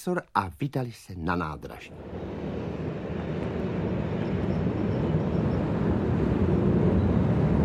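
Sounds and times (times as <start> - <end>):
speech: 0.0 - 2.3
train arriving at a railway station rumbling: 1.9 - 7.6.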